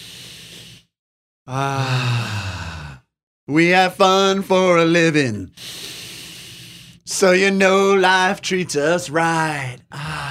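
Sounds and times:
deep breath with noisy inhale and sighing exhale: 0.0s - 3.1s, 5.6s - 7.1s, 9.9s - 10.2s
speech: 1.5s - 2.2s, 3.5s - 6.0s, 7.1s - 10.2s.

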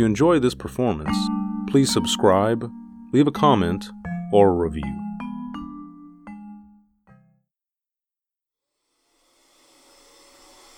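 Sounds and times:
speech: 0.0s - 5.0s
ringing musical notes: 1.1s - 7.3s
vacuum cleaner running: 9.3s - 10.7s.

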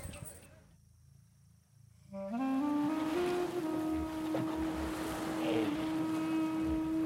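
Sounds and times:
boat engine drone: 2.2s - 7.0s
water splashing and rushing around a boat on a river: 2.7s - 7.0s.

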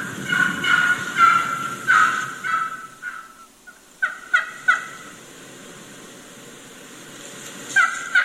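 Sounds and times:
wild turkey hens yelping: 0.0s - 5.2s, 7.7s - 8.2s.

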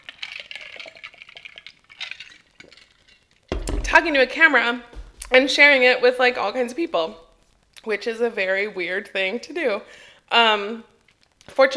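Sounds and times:
water pouring into a glass: 0.0s - 3.4s
speech: 3.9s - 7.2s, 7.8s - 10.9s, 11.5s - 11.7s.

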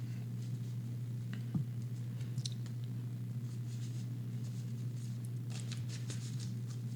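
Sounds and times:
steady low electrical hum: 0.0s - 6.9s
deck of tarot cards being shuffled: 5.0s - 6.9s.

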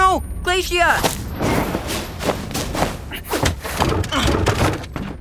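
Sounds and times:
speech: 0.1s - 1.2s
banging knocks and rattles: 1.4s - 5.1s
heavy wooden trapdoor in an opera house slamming shut: 3.3s - 5.1s.

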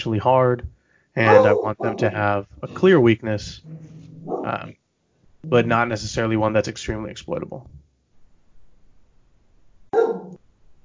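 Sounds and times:
speech: 0.0s - 4.8s, 5.4s - 7.8s
single loud sharp dog bark: 1.2s - 2.1s, 4.2s - 4.6s, 9.9s - 10.4s.

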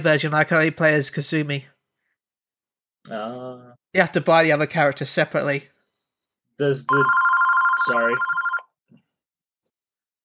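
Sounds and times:
speech: 0.0s - 1.7s, 3.0s - 5.7s, 6.6s - 7.2s, 7.8s - 8.4s
telephone ringing with warbling electronic trill: 6.9s - 8.8s.

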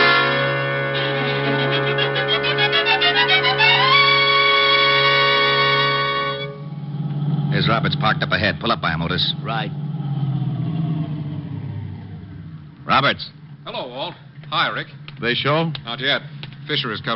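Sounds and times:
police car siren wailing: 0.2s - 8.2s, 9.8s - 12.7s
speech: 7.8s - 9.8s, 13.0s - 13.4s, 14.0s - 17.1s.

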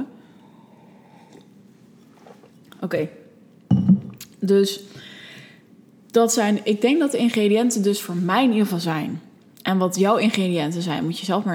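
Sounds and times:
faint steady hum: 0.0s - 11.5s
person sipping a drink: 0.8s - 2.8s
soft swallowing: 2.1s - 2.8s
speech: 2.8s - 3.2s, 4.4s - 5.1s, 6.1s - 11.5s.

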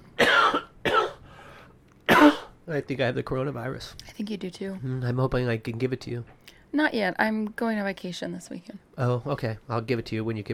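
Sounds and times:
harsh coughing: 0.2s - 1.3s, 2.1s - 2.6s
speech: 2.7s - 10.5s.

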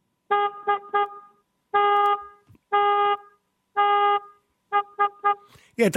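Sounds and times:
car horn honking: 0.2s - 5.6s
speech: 5.8s - 5.9s.

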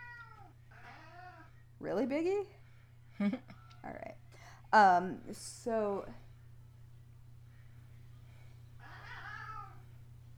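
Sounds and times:
cat meowing: 0.0s - 1.5s, 8.8s - 9.8s
steady low hum: 0.0s - 10.3s
speech: 1.8s - 2.6s, 3.2s - 6.2s.

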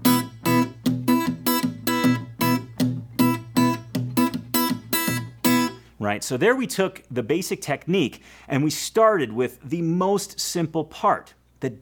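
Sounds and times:
fingerpicked acoustic guitar in a fully syncopated pattern: 0.0s - 5.9s
speech: 6.0s - 11.8s.

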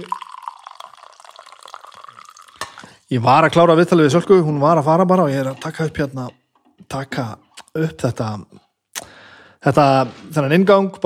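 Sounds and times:
speech: 0.0s - 0.2s, 3.1s - 8.6s, 9.6s - 11.0s
coffee dripping: 0.0s - 3.1s
coffee pouring into a mug: 0.0s - 4.4s.

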